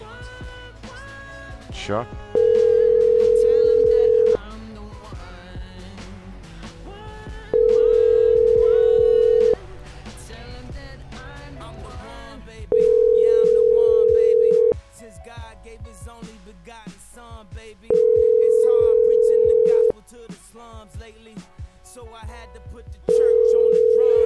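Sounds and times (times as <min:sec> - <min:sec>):
speech: 0:01.7 - 0:02.4
outgoing phone call ringing tone: 0:02.4 - 0:04.4, 0:07.5 - 0:09.6, 0:12.7 - 0:14.8, 0:17.9 - 0:19.9, 0:23.1 - 0:24.2.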